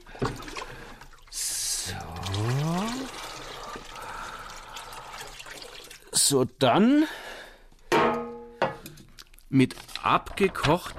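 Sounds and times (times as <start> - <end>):
thick malt extract pouring into a fermenting bucket: 0.1 - 6.2
speech: 6.3 - 7.2, 9.5 - 10.9.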